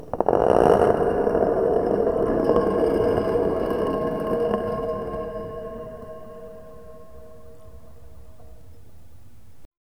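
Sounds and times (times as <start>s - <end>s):
large round stone moving slowly in a cathedral: 0.0s - 9.6s.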